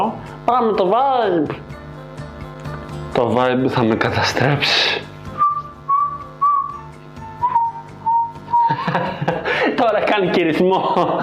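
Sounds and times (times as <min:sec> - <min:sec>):
speech: 0:00.0 - 0:01.8, 0:03.2 - 0:05.1, 0:09.8 - 0:11.2
person whistling a simple melody: 0:05.4 - 0:08.9
laughter: 0:08.5 - 0:11.2.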